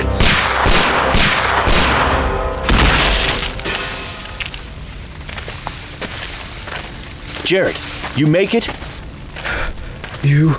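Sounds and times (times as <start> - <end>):
shotgun blasts fired into trees: 0.1 - 3.6
speech: 7.5 - 8.8, 10.2 - 10.5.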